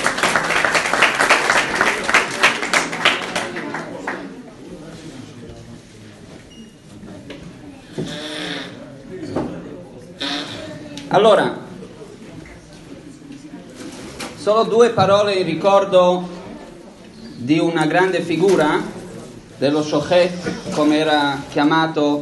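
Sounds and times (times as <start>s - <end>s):
audience applause from an evening lecture group: 0.0s - 4.5s
speech: 11.2s - 11.6s, 14.4s - 16.4s, 17.4s - 18.9s, 19.6s - 22.1s.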